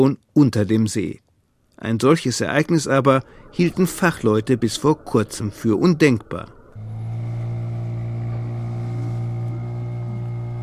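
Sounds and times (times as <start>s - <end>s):
speech: 0.0s - 1.2s, 1.8s - 6.6s
small boat motor droning across a lake: 6.7s - 10.6s.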